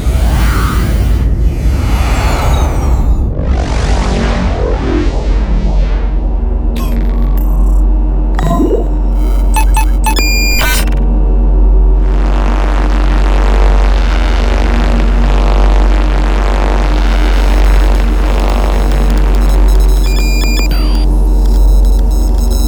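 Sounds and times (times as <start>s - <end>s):
deep spaceship engine drone: 0.0s - 22.6s
beeps: 6.8s - 7.8s, 8.4s - 11.1s, 17.0s - 22.6s
electronic spaceship pings: 8.4s - 11.0s, 17.4s - 22.6s.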